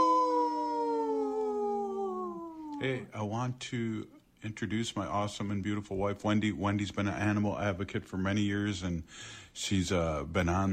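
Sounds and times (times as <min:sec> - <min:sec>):
wolf howling: 0:00.0 - 0:02.9
speech: 0:02.8 - 0:10.7.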